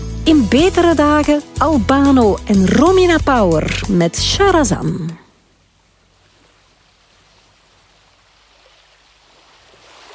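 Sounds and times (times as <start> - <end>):
speech: 0.3 - 5.2
waves washing in: 6.0 - 10.1.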